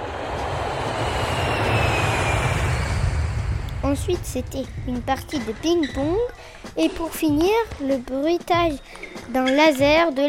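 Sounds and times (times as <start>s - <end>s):
airplane landing roar: 0.0s - 6.8s
speech: 3.9s - 10.2s.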